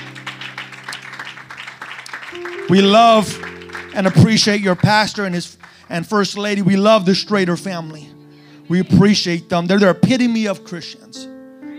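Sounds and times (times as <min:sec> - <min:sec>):
crowd clapping hands: 0:00.0 - 0:06.9
sustained low musical tone humming: 0:00.0 - 0:10.4
speech: 0:02.3 - 0:11.3.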